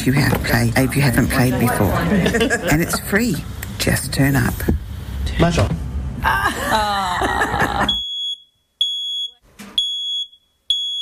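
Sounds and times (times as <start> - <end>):
speech: 0.0 - 8.0
laughter: 1.1 - 3.2, 6.2 - 8.0
smoke alarm beeping: 7.9 - 11.0.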